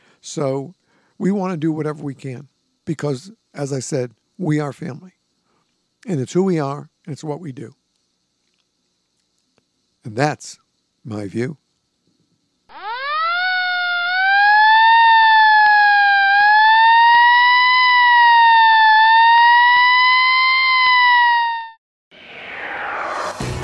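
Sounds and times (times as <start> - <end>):
speech: 0.2 - 5.2, 6.0 - 7.8, 10.0 - 11.6
fire engine siren: 12.7 - 23.4.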